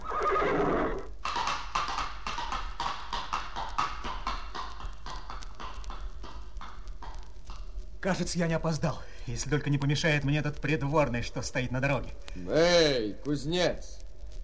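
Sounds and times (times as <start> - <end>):
horse neighing: 0.0 - 1.1
ridden horse's hooves clip-clopping: 0.0 - 12.4
speech: 8.0 - 14.0.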